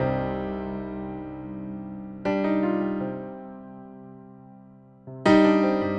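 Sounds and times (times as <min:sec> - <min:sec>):
emotional piano music: 0:00.0 - 0:05.9.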